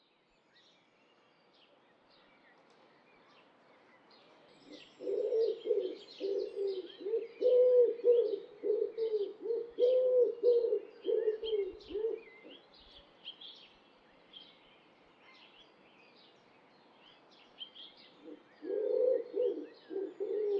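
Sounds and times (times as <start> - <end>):
Columba palumbus wood pigeon: 4.6 - 12.6, 18.2 - 20.5.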